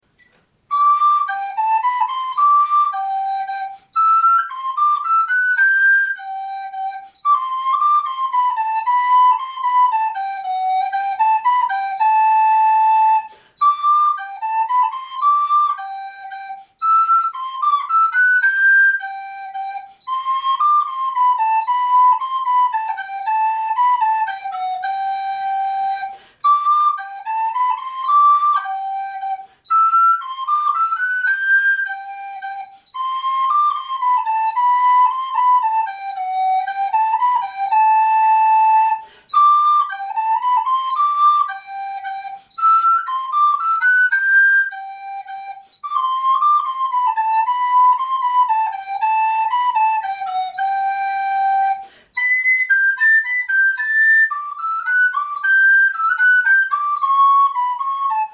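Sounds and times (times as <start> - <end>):
flute playing a minuet: 0.1 - 58.3.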